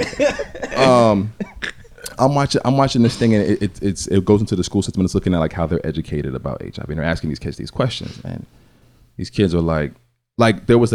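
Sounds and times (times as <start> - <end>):
person coughing roughly: 0.0 - 2.2
speech: 0.2 - 1.5, 2.2 - 10.9
longer voiced throaty sound: 0.6 - 2.3.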